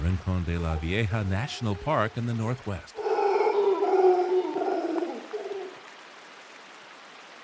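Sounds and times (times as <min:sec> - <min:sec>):
rain in a cloud forest: 0:00.0 - 0:07.4
speech: 0:00.2 - 0:03.0
golden-mantled howler monkey troop howling in the rain in a cloud forest: 0:00.5 - 0:02.3, 0:03.0 - 0:05.8.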